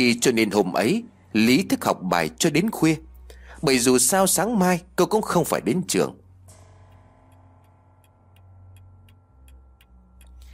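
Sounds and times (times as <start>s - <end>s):
speech: 0.0s - 6.2s
clock ticking in a room: 3.1s - 10.5s.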